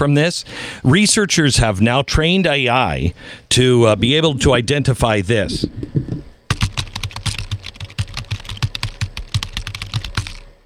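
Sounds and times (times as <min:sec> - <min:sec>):
speech: 0:00.0 - 0:06.0
rapid typing on a computer keyboard: 0:06.5 - 0:10.5.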